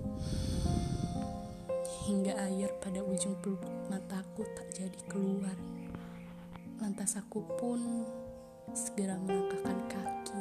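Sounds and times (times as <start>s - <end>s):
soft sustained musical tones: 0.0s - 10.3s
long steady exhale of breath after a deep inhale: 0.2s - 1.7s
speech: 2.1s - 5.8s, 6.8s - 10.0s.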